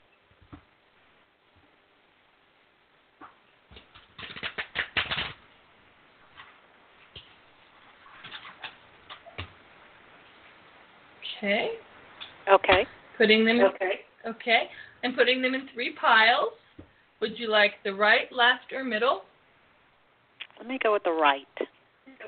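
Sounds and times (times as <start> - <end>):
deck of cards being shuffled for a card reading: 3.7 - 5.4
speech: 11.4 - 11.8, 12.5 - 16.5, 17.2 - 19.3, 20.8 - 21.6.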